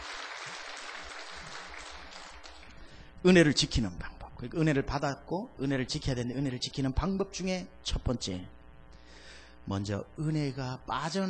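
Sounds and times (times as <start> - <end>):
congregation applauding: 0.0 - 3.1
speech: 3.2 - 8.6, 9.6 - 11.2.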